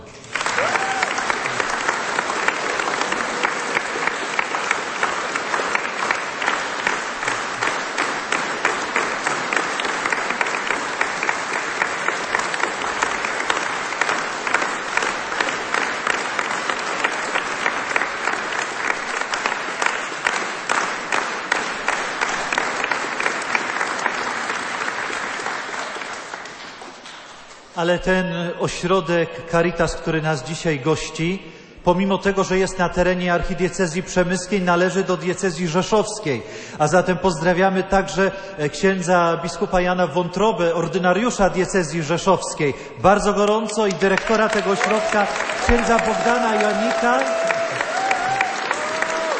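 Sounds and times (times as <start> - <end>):
applause from a large audience: 0.0 - 27.7, 43.2 - 49.3
speech: 27.8 - 47.4.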